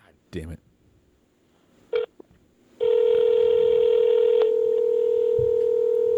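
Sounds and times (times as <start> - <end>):
long steady electronic telephone tone: 2.8 - 6.1.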